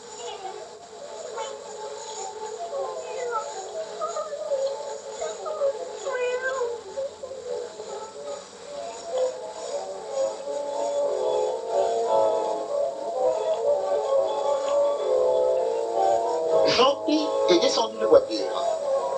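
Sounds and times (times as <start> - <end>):
hiss: 0.0 - 19.1
cats meowing plaintively: 2.8 - 8.2.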